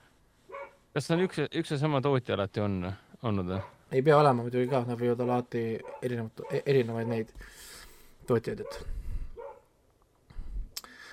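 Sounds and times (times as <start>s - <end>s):
dog barking loudly outdoors: 0.5s - 0.8s, 3.6s - 3.8s, 4.7s - 7.3s, 8.6s - 9.7s
speech: 1.0s - 7.7s, 8.3s - 9.0s.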